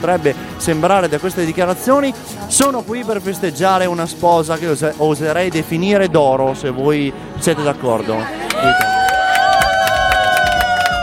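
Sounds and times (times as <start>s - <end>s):
speech: 0.0s - 8.9s
wedding party crowd applauding at a convent venue: 8.3s - 11.0s.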